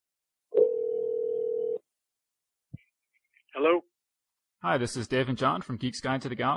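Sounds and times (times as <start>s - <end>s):
mid-pitched telephone dial tone while placing a call: 0.6s - 1.8s
speech: 3.6s - 3.9s, 4.6s - 6.5s.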